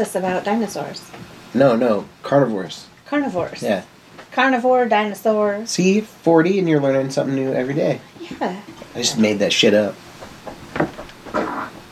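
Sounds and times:
speech: 0.0s - 10.6s
fart: 11.3s - 11.8s.

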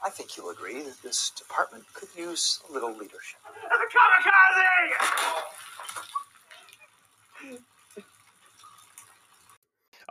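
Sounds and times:
water splashing during a water fight: 0.0s - 9.6s
speech: 0.1s - 6.2s, 7.4s - 8.1s
people shouting excitedly: 3.4s - 5.6s.

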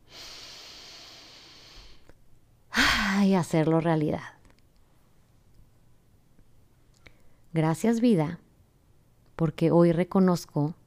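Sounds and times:
deep breath: 0.0s - 2.1s
speech: 3.3s - 4.4s, 7.6s - 8.4s, 9.4s - 10.8s.

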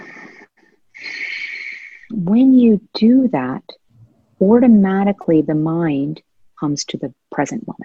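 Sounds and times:
audible breathing through the nose with the mouth closed: 0.0s - 2.1s
speech: 2.3s - 3.8s, 4.4s - 7.8s.

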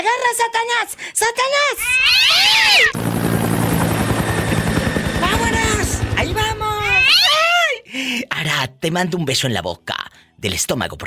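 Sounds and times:
speech: 0.0s - 3.1s, 8.0s - 11.0s
cat meowing: 1.8s - 3.0s, 6.8s - 7.5s
helicopter rotor on a flight to Monterrey: 2.2s - 7.2s.

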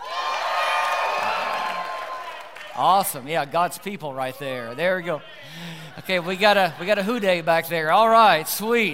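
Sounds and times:
church audience cheering and whooping: 0.0s - 2.8s
speech: 2.8s - 8.9s.

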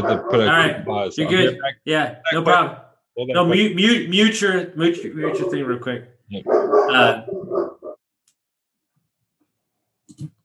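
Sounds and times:
dog barking in a loud rapid flurry: 0.0s - 1.5s, 5.2s - 5.8s, 6.4s - 8.0s
speech: 0.0s - 7.7s, 10.1s - 10.4s.

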